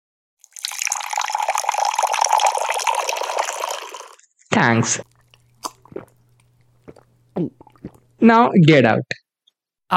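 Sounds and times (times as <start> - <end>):
water pouring into a glass: 0.4 - 4.2
speech: 4.6 - 5.1, 8.2 - 9.2.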